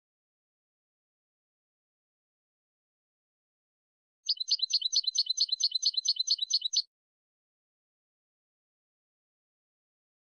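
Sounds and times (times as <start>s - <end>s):
European goldfinch song: 4.3s - 6.9s.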